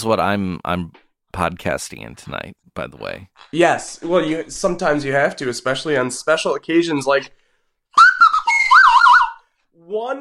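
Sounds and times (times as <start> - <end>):
speech: 0.0 - 7.4, 9.8 - 10.1
slide whistle: 7.9 - 9.6.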